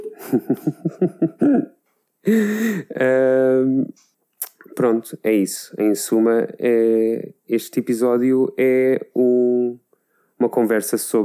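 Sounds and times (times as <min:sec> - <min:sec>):
laughter: 0:00.0 - 0:01.7
speech: 0:00.3 - 0:04.0, 0:04.8 - 0:09.8, 0:10.4 - 0:11.2
person clearing throat: 0:01.4 - 0:01.8
person coughing: 0:01.4 - 0:02.5.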